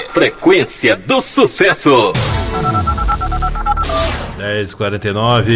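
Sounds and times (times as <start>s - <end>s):
speech: 0.1s - 2.7s, 4.4s - 5.5s
telephone keypad tones as a call is connected on a radio phone-in: 2.5s - 4.1s.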